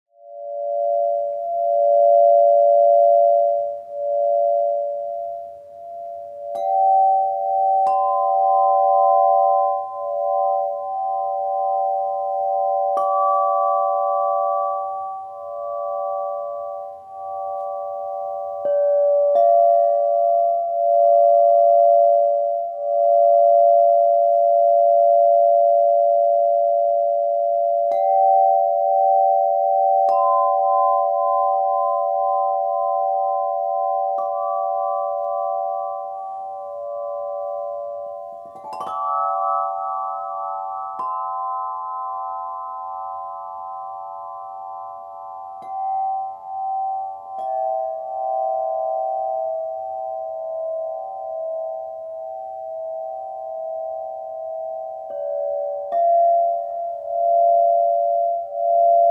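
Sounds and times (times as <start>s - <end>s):
crystal harp: 0.2s - 59.0s.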